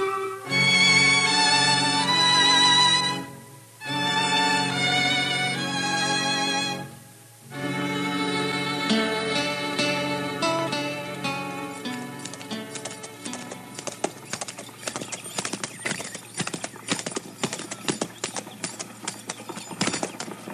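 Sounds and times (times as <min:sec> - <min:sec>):
music bed: 0:00.0 - 0:14.2
horse hooves clip-clopping: 0:11.2 - 0:20.5.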